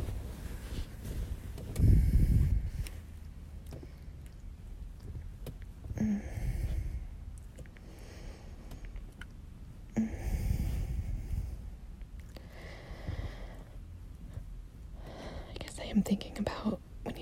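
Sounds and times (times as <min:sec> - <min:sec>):
person breathing slowly and softly: 0:00.0 - 0:03.2, 0:05.9 - 0:09.0, 0:09.9 - 0:16.7
speech: 0:16.1 - 0:16.8.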